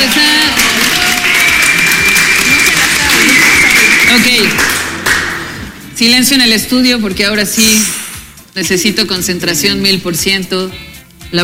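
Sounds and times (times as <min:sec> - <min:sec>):
studio audience applause: 0:00.0 - 0:05.7
speech: 0:06.0 - 0:11.4.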